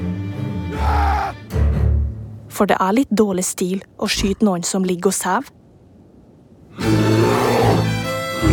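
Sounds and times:
bear roaring: 0:00.5 - 0:01.4, 0:06.8 - 0:08.5
speech: 0:02.6 - 0:05.6.

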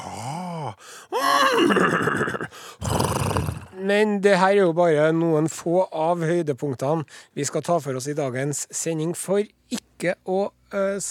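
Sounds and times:
speech: 0:01.1 - 0:02.6, 0:03.8 - 0:11.0
horse neighing: 0:01.2 - 0:03.8
horse giving a harsh breathy snort-like call: 0:01.6 - 0:03.8.

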